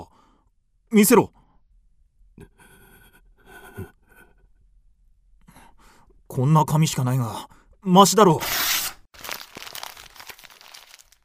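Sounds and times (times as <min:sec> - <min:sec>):
speech: 0:00.9 - 0:01.4, 0:06.4 - 0:08.6
paper tearing: 0:08.4 - 0:11.2.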